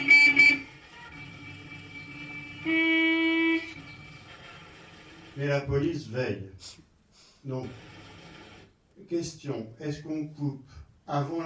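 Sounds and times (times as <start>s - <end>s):
car horn honking: 0.0s - 1.2s, 2.1s - 4.0s
faint noise: 0.0s - 11.4s
speech: 5.4s - 6.8s, 7.4s - 8.0s, 9.1s - 11.4s.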